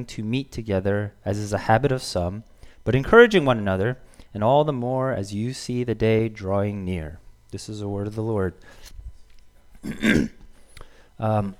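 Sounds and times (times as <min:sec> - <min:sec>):
speech: 0:00.0 - 0:08.9, 0:09.8 - 0:10.4, 0:11.2 - 0:11.5
person clearing throat: 0:09.8 - 0:10.5.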